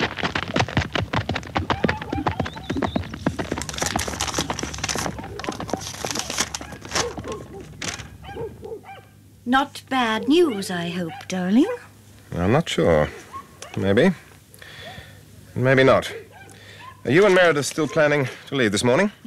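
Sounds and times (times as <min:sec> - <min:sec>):
horse galloping away from a house: 0:00.0 - 0:09.0
speech: 0:09.5 - 0:13.2, 0:13.8 - 0:14.2, 0:15.6 - 0:16.2, 0:17.0 - 0:19.2.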